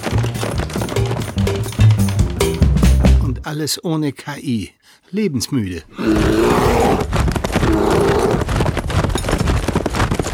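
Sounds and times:
hoofbeats of a galloping camel carrying a rider: 0.0s - 3.2s, 6.0s - 10.3s
speech: 3.4s - 8.6s
continuous roaring rush: 6.0s - 8.5s.

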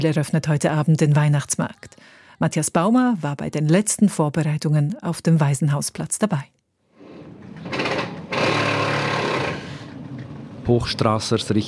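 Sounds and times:
speech: 0.0s - 6.6s, 10.7s - 11.6s
power drill whirring with high motor whine at a Christmas market stall in Bern: 7.0s - 10.2s.

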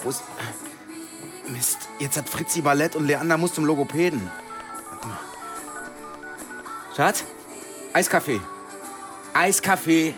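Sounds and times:
speech: 0.0s - 0.8s, 1.5s - 5.3s, 7.0s - 8.5s, 9.3s - 10.1s
telephone keypad dialing tones: 4.1s - 7.3s.

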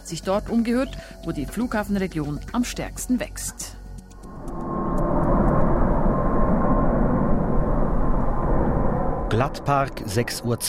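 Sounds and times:
speech: 0.1s - 3.8s, 9.4s - 10.6s
passenger jet gliding over a residential district before landing: 4.2s - 10.6s.

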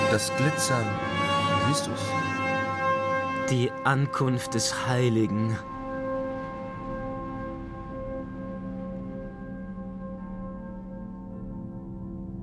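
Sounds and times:
church bells ringing: 0.0s - 9.4s
speech: 0.1s - 2.4s, 3.5s - 5.7s.

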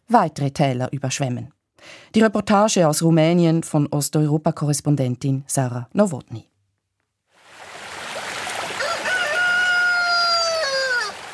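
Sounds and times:
speech: 0.1s - 6.5s
rooster crowing on a lakeshore near a copper mine in Romania: 8.6s - 11.3s.

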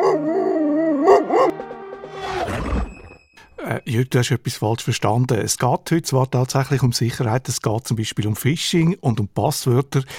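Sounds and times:
dog howling and snarling: 0.0s - 1.5s
speech: 3.8s - 10.1s.

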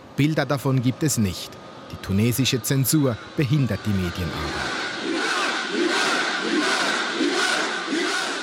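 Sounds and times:
speech: 0.2s - 4.9s
large protest crowd chanting a slogan: 4.3s - 8.4s.

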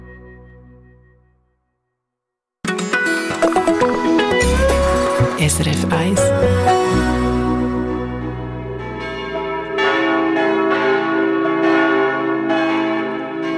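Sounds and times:
church bells pealing: 3.5s - 13.5s
speech: 5.4s - 7.1s.

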